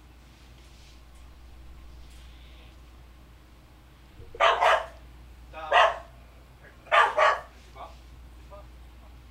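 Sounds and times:
dog barking: 4.3s - 5.0s, 5.7s - 6.2s, 6.8s - 7.6s.

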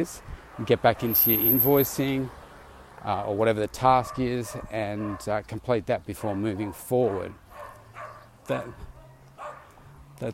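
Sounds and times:
speech: 0.0s - 2.4s, 3.0s - 7.4s, 8.5s - 8.9s, 10.2s - 10.3s
dog barking and yipping: 4.0s - 5.3s, 6.2s - 9.7s.

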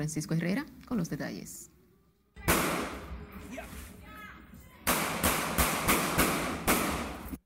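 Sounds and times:
speech: 0.0s - 1.8s
gunshots in an exchange of gunfire over a traffic incident: 2.5s - 3.2s, 4.8s - 7.4s.

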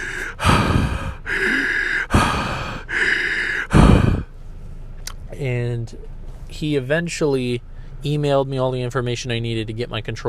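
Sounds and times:
person imitating heavy breathing into a microphone: 0.0s - 4.4s
speech: 5.4s - 10.2s.

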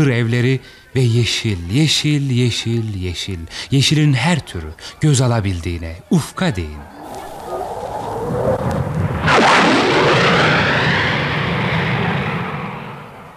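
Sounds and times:
speech: 0.0s - 6.9s
airplane roaring over the garden of a boarding school: 6.0s - 13.3s.

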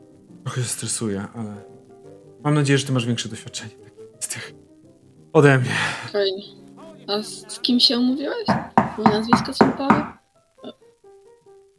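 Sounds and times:
speech: 0.5s - 1.8s, 2.4s - 4.6s, 5.3s - 10.8s
knocking on a back door: 8.5s - 10.2s.

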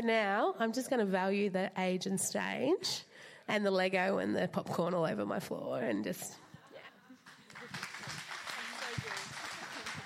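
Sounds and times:
speech: 0.0s - 6.4s
family clapping: 7.2s - 10.0s.

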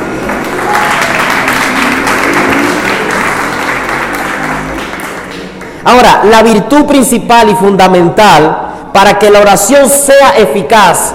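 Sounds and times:
crowd applauding in a large room: 0.0s - 5.8s
speech: 5.9s - 11.1s.

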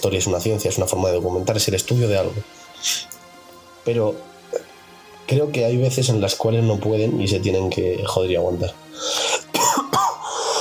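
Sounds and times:
speech: 0.0s - 3.2s, 3.8s - 4.6s, 5.3s - 8.8s
steady hiss: 0.0s - 9.5s
person with a bad cold coughing: 9.2s - 10.5s.

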